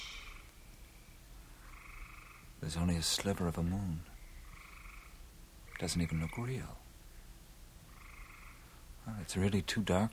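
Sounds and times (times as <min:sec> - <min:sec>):
frogs croaking in buzzy trills at night: 0:01.6 - 0:02.6, 0:04.0 - 0:06.8, 0:07.9 - 0:08.7
speech: 0:02.6 - 0:04.1, 0:05.8 - 0:06.8, 0:09.0 - 0:10.1.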